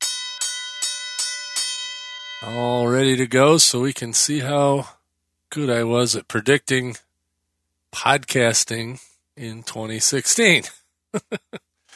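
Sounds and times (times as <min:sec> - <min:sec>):
bell strikes: 0:00.0 - 0:02.6
speech: 0:02.4 - 0:07.1, 0:07.9 - 0:11.6
laughter: 0:11.2 - 0:11.6.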